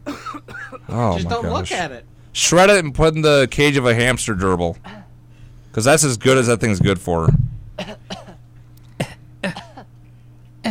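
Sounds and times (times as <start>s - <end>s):
woman coughing: 0.0s - 1.0s, 7.8s - 8.4s, 9.0s - 9.9s
faint steady hum: 0.0s - 10.7s
speech: 0.9s - 5.0s, 5.8s - 7.9s.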